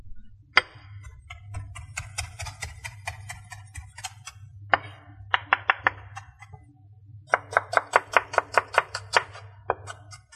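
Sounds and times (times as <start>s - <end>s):
chopping knife cutting parsley and onion on a board: 0.6s - 6.6s, 7.3s - 10.3s.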